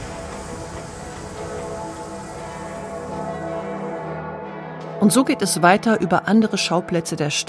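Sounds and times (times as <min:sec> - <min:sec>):
hissing noise: 0:00.0 - 0:04.0
arriving train locomotive rumbling: 0:00.0 - 0:04.1
speech: 0:05.0 - 0:07.4.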